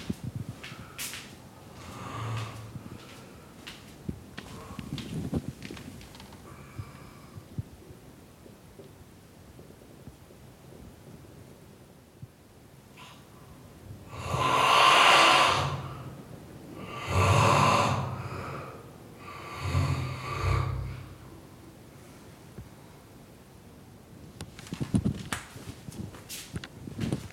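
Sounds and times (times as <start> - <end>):
rustling: 0.0 - 6.8, 24.4 - 27.3
man snoring behind a closed door: 14.1 - 16.0, 16.8 - 21.2.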